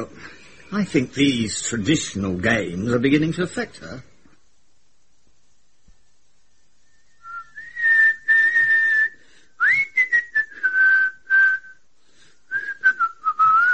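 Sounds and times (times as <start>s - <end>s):
speech: 0.0s - 4.1s
person whistling a melodic tune in a corridor: 6.9s - 11.8s, 12.5s - 13.7s.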